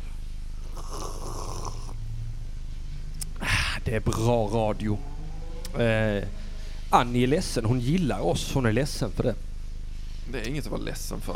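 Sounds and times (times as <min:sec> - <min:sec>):
low steady hum: 0:00.0 - 0:11.3
person drinking water into the microphone: 0:00.6 - 0:02.0
speech: 0:03.9 - 0:05.1, 0:05.7 - 0:09.4, 0:10.3 - 0:11.3.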